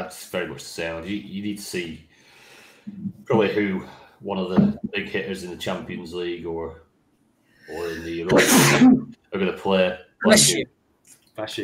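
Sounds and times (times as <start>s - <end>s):
speech: 0.0s - 2.1s, 2.9s - 6.8s, 7.7s - 10.8s, 11.4s - 11.6s
loud sneeze: 7.8s - 9.1s.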